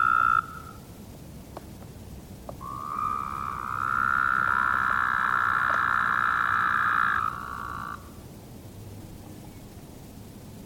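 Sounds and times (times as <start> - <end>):
Woodhouse's toad buzzy call: 0.0 - 0.9, 2.6 - 8.2.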